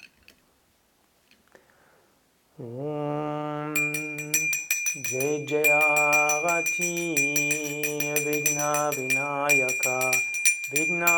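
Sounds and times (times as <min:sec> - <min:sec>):
speech: 0:02.6 - 0:03.0, 0:05.1 - 0:06.0, 0:06.6 - 0:11.1
hand bell ringing during arati ritual: 0:03.8 - 0:11.1.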